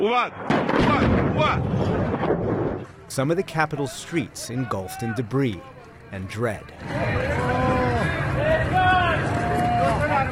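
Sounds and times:
speech: 0.0 - 9.3
heavy explosions in a city under attack: 0.3 - 3.1.

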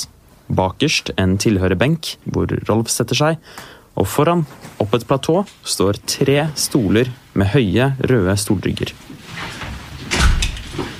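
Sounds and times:
speech: 0.6 - 9.6
courtroom door opening with a soft mechanical clunk: 9.5 - 10.9.

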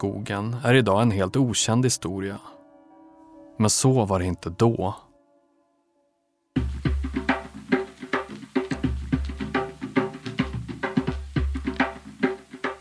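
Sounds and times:
speech: 0.0 - 2.6, 3.6 - 5.0
Native American drums beating in a steady driving rhythm: 6.6 - 12.7.

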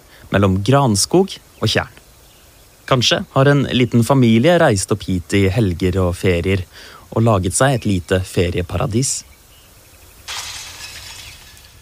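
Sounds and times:
speech: 0.3 - 2.0, 2.9 - 9.4
window glass shattering: 10.2 - 11.8
tinkling fragments of window glass settling: 10.3 - 11.8.

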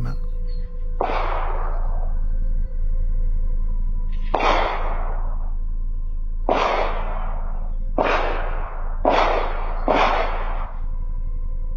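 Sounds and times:
steady low electrical hum: 0.0 - 11.7
pistol shots recorded by a villa's surveillance camera: 1.0 - 1.9, 4.3 - 5.3, 6.5 - 10.8.

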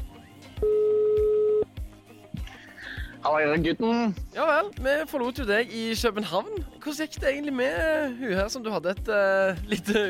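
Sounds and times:
phone line ringing tone: 0.6 - 1.7
speech: 3.2 - 10.0.

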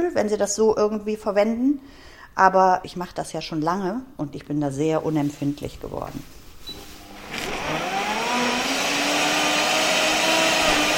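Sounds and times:
speech: 0.0 - 6.4
smoothie blender motor whirring chopping leafy greens: 7.0 - 10.9.

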